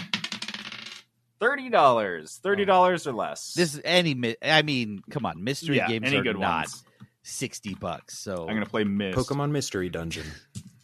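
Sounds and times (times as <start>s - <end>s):
dice being rolled: 0.0s - 1.1s
speech: 1.4s - 10.5s.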